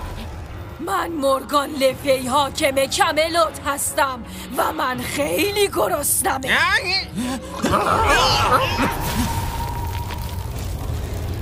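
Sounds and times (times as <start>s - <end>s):
speech: 0.8s - 9.3s
laughter: 7.6s - 9.1s
loud rumbling explosion: 8.9s - 11.4s.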